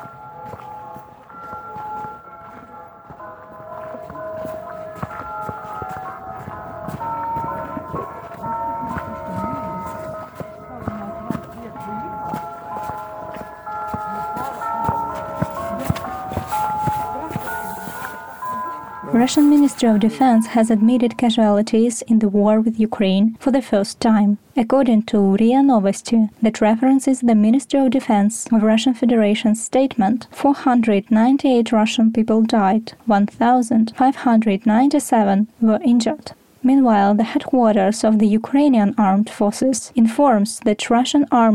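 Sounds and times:
church bells ringing the national anthem at night after an air-strike alarm: 0:00.0 - 0:21.4
speech: 0:19.2 - 0:41.5.

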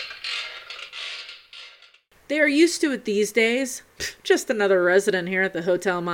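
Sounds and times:
wooden rocking chair creaking as it rocks in a hotel room: 0:00.0 - 0:02.1
speech: 0:02.3 - 0:06.1.

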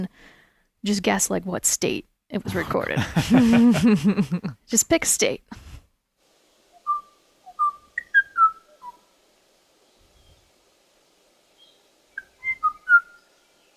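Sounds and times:
speech: 0:00.0 - 0:05.6
laughter: 0:02.5 - 0:04.6
Kauai o'o bird singing bubbly jazzy whistled notes in Hawaii: 0:06.7 - 0:09.1, 0:09.8 - 0:10.5, 0:11.5 - 0:13.7.

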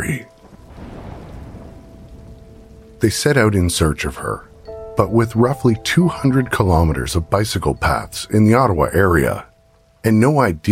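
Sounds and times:
deep rumble of thunder: 0:00.0 - 0:09.2
heavy rain in a thunderstorm: 0:00.0 - 0:10.7
speech: 0:03.0 - 0:10.7.

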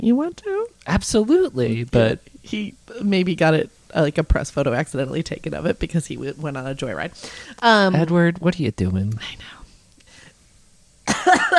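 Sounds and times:
speech: 0:00.0 - 0:09.6
person coughing: 0:11.1 - 0:11.5.

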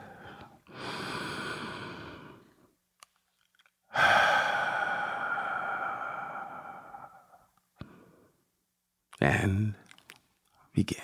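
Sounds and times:
deep airy breath drawn in before a poetry reading: 0:00.0 - 0:02.7, 0:03.9 - 0:08.4
speech: 0:09.2 - 0:09.8, 0:10.8 - 0:11.0.

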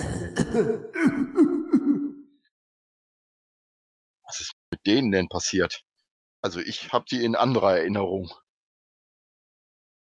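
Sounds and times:
harsh throaty coughs: 0:00.0 - 0:02.2
speech: 0:00.6 - 0:01.5, 0:04.8 - 0:08.4.

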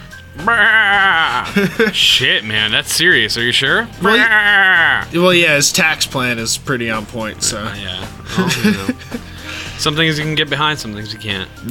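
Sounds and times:
laughter: 0:00.4 - 0:02.7, 0:04.0 - 0:05.1, 0:07.5 - 0:09.7
speech: 0:00.4 - 0:11.6
goat bleating: 0:04.0 - 0:05.1.

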